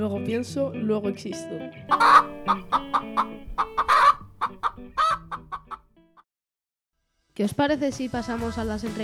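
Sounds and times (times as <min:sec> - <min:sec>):
speech: 0:00.0 - 0:04.2, 0:07.4 - 0:09.0
hens clucking: 0:01.9 - 0:05.8.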